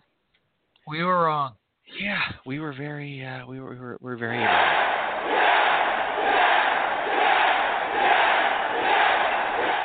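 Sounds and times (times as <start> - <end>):
speech: 0.9 - 5.7
large wrestling arena crowd chanting excitedly: 4.4 - 9.8.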